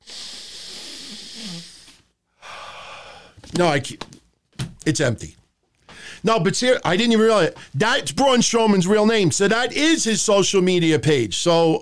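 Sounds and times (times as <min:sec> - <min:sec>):
long airy sniff through the nose at something held to the nose: 0:00.0 - 0:02.0
speech: 0:03.5 - 0:04.1, 0:04.8 - 0:05.4, 0:06.2 - 0:11.7.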